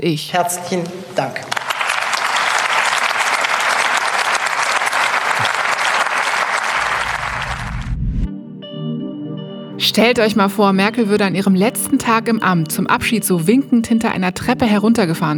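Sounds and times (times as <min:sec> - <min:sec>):
speech: 0:00.0 - 0:01.6, 0:09.9 - 0:15.3
large crowd applauding after a parliamentary speech: 0:01.5 - 0:08.0.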